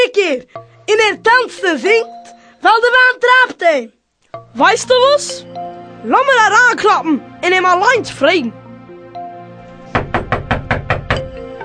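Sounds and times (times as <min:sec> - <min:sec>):
speech: 0:00.1 - 0:08.6
knocking on a door: 0:09.9 - 0:11.4.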